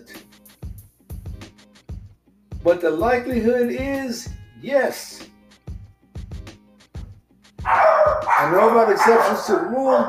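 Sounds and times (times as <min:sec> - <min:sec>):
speech: 0:02.6 - 0:05.2, 0:08.4 - 0:10.0
dogs barking with short deep woofs: 0:07.6 - 0:10.0.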